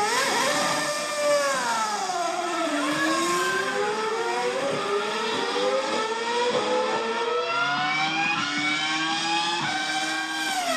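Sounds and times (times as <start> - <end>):
engines roaring: 0.0 - 10.7.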